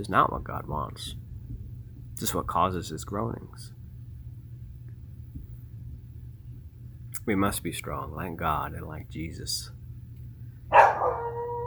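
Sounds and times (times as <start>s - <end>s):
speech: 0.0s - 1.2s, 2.2s - 3.8s, 7.2s - 9.8s
low hum: 0.0s - 11.6s
dog barking: 10.7s - 11.6s
dog whining: 10.8s - 11.6s.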